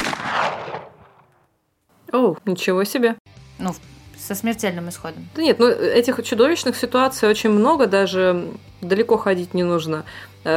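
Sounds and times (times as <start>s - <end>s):
pistol gunshot: 0.0s - 1.4s
speech: 2.2s - 10.5s.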